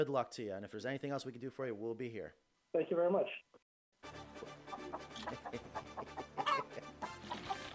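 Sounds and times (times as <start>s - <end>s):
speech: 0.0s - 6.2s
chickens clucking: 4.4s - 7.7s.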